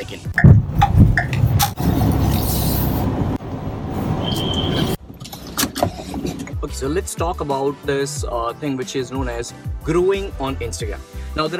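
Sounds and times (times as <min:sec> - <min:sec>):
car engine rumbling as vehicle slows and pulls over: 0:00.3 - 0:06.5
road noise: 0:00.3 - 0:06.6
speech: 0:06.7 - 0:11.5.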